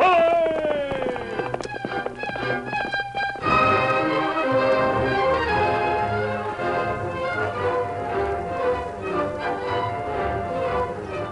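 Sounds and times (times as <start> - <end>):
galloping hoofbeats of a horse: 0.0 - 5.8
loud sweeping orchestral music: 1.2 - 11.3.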